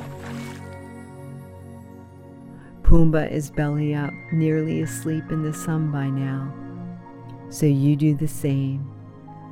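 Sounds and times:
wet sloppy splash into thick mud: 0.0 - 0.8
mud squelching and oozing: 0.0 - 0.9
speech: 2.9 - 6.6, 7.5 - 8.9.

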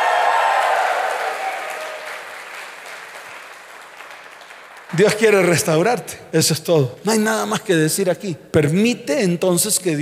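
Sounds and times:
audience applauding loudly: 0.0 - 5.8
speech: 5.0 - 9.9.

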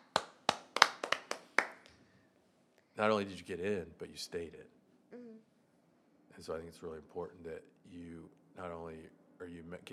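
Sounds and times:
crisp hand claps: 0.0 - 2.0
speech: 3.0 - 5.5, 6.4 - 9.9.

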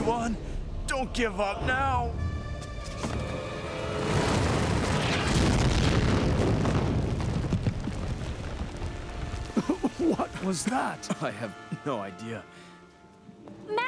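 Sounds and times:
speech: 0.2 - 2.4, 10.0 - 12.7
booming explosion: 3.2 - 10.5
crackles and pops: 4.0 - 10.8.

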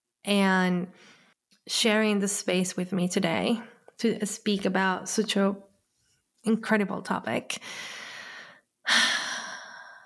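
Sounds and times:
speech: 0.2 - 5.7, 6.4 - 8.0, 8.9 - 9.1
deep breath: 7.6 - 10.0.

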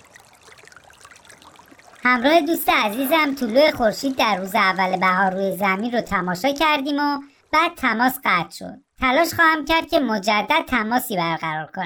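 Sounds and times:
running water trickling and babbling: 0.0 - 8.4
speech: 2.0 - 11.8.

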